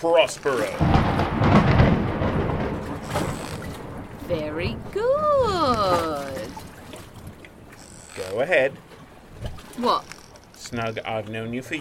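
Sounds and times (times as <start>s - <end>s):
speech: 0.0s - 1.5s, 8.2s - 8.8s, 9.8s - 10.1s, 10.7s - 11.7s
deep rolling thunder: 0.6s - 7.4s.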